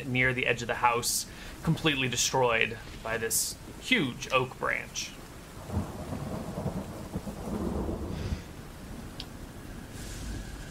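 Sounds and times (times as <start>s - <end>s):
speech: 0.0s - 6.0s
heavy rain downpour in a thunderstorm: 0.0s - 10.6s
low rolling thunder rumbles in a thunderstorm: 5.5s - 10.6s.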